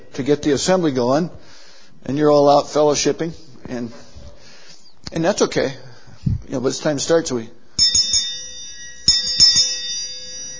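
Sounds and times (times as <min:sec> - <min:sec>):
speech: 0:00.2 - 0:01.4, 0:02.0 - 0:04.0, 0:05.1 - 0:08.2
hand bell ringing to call an assembly to order: 0:07.8 - 0:10.5.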